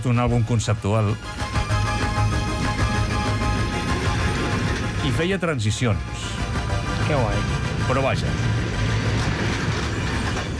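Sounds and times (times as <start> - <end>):
speech: 0.0 - 1.6, 5.0 - 8.6
train rumbling along its rails: 0.0 - 10.5.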